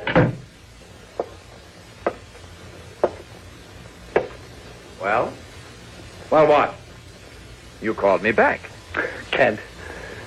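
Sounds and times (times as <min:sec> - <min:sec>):
door shutting with a loud wooden thud: 0:00.0 - 0:00.5
sharp taps: 0:03.0 - 0:03.2, 0:04.1 - 0:04.4
speech: 0:05.0 - 0:05.4, 0:06.3 - 0:06.8, 0:07.8 - 0:08.8, 0:09.4 - 0:09.7.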